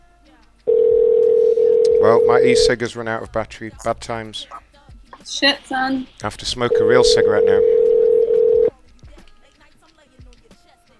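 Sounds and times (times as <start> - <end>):
telephone ringback tone on a call: 0.7 - 2.7, 6.7 - 8.7
speech: 2.1 - 4.6, 5.2 - 7.8.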